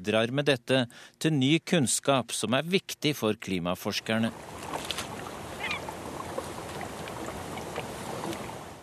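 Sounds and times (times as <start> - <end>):
speech: 0.0 - 4.8
small boat rumble on fjord: 4.0 - 8.8
wash of fjord water: 4.2 - 8.8
faint bird calls: 5.2 - 8.4.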